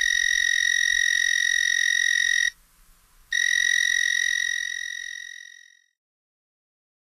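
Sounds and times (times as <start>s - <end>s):
North American narrow-winged tree cricket trilling: 0.0s - 2.6s, 3.3s - 5.9s.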